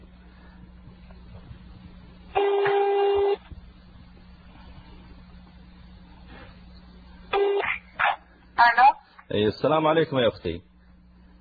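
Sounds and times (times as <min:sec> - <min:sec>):
landline telephone ringing tone: 0:02.4 - 0:03.4, 0:07.4 - 0:07.7
speech: 0:09.3 - 0:10.7.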